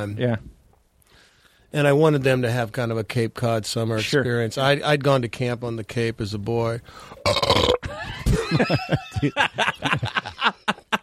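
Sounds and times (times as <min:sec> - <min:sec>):
speech: 0:00.0 - 0:00.5, 0:01.7 - 0:07.8, 0:08.5 - 0:10.6
person belching: 0:07.2 - 0:07.9
laughter: 0:07.9 - 0:11.0.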